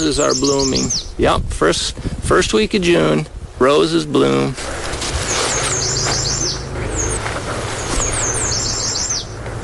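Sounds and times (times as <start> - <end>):
yellow warbler singing: 0.0 - 1.2, 5.2 - 9.4
steady low rumble of outdoor noise: 0.0 - 9.6
speech: 0.1 - 4.8.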